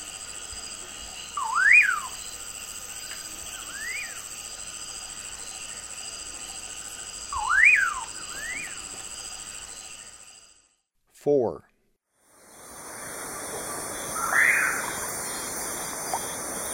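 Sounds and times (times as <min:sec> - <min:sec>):
buzzing insect chorus: 0:00.0 - 0:10.8, 0:12.2 - 0:16.7
common pauraque whistling in eastern lowlands of South America: 0:01.3 - 0:02.3, 0:03.6 - 0:04.2, 0:07.3 - 0:08.8, 0:14.2 - 0:15.0
speech: 0:11.2 - 0:11.7.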